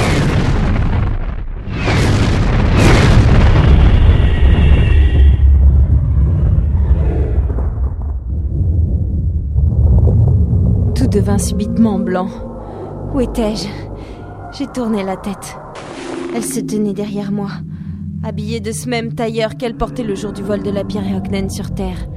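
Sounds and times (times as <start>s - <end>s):
huge booming explosion sound effect representing the Big Bang: 0.0s - 11.2s
long deep rumbling roar: 1.5s - 22.1s
speech: 11.2s - 12.5s, 13.2s - 13.9s, 14.6s - 15.6s, 16.4s - 17.7s, 18.3s - 22.1s.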